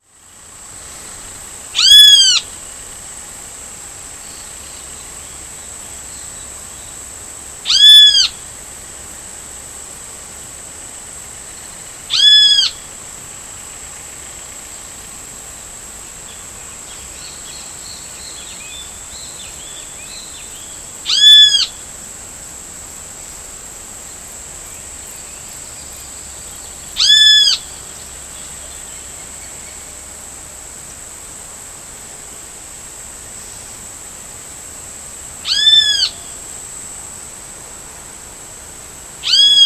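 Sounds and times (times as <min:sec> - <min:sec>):
Pitangus sulphuratus calling in Uruguay: 0:01.8 - 0:02.7, 0:07.6 - 0:08.4, 0:12.1 - 0:12.9, 0:16.9 - 0:21.9, 0:24.7 - 0:29.9, 0:35.4 - 0:36.4, 0:39.2 - 0:39.6.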